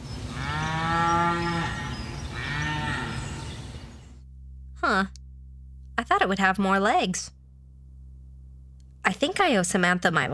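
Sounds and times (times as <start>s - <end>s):
cow mooing: 0.3s - 3.7s
speech: 4.9s - 5.2s, 6.0s - 7.4s, 9.1s - 10.3s.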